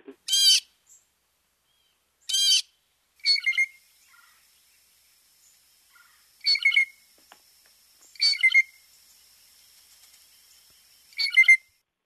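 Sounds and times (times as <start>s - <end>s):
blue jay giving harsh raspy calls: 0.2s - 11.8s.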